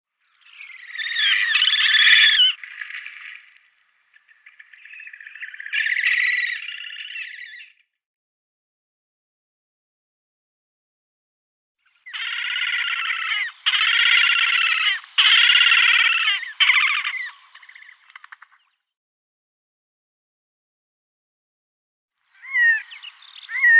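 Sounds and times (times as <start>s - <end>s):
Slavonian grebe calling: 0.2s - 7.8s, 12.0s - 18.8s, 22.3s - 23.7s.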